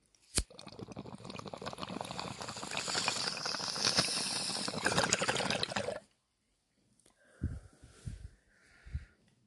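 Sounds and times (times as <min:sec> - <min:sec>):
sparkling water fizzing: 0:01.1 - 0:06.0.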